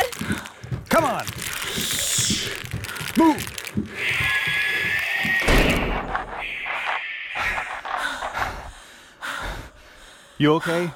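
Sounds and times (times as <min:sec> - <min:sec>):
speech: 0:01.0 - 0:02.0, 0:03.2 - 0:04.2, 0:10.4 - 0:10.9
faint breathing: 0:01.4 - 0:05.0, 0:07.3 - 0:10.9
heavy door slamming shut: 0:05.4 - 0:06.4.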